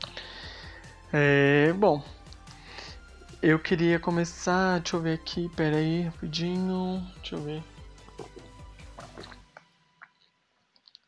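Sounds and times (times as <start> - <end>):
speech: 1.1 - 2.2, 3.4 - 7.7
water dripping: 8.0 - 11.0.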